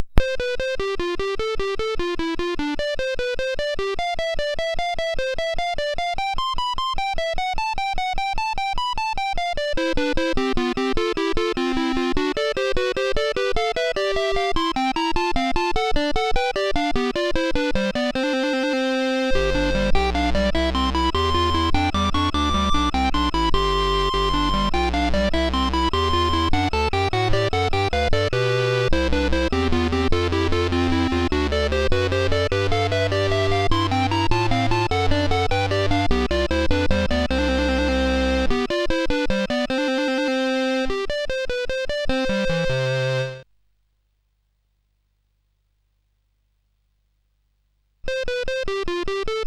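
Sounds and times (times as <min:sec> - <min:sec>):
organ player music on SID CSG8580R5 chip: 0:00.2 - 0:43.4, 0:48.1 - 0:49.4.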